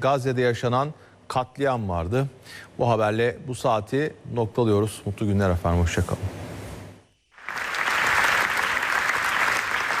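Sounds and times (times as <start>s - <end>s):
speech: 0.0s - 6.4s
large crowd giving standing applause in a reverberant festival hall: 7.4s - 9.9s.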